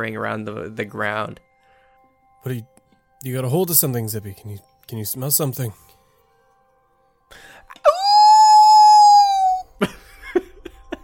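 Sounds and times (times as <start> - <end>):
speech: 0.0 - 1.5, 2.4 - 6.0
short breathy sounds: 7.3 - 8.0
person imitating a dog howling: 7.8 - 9.7.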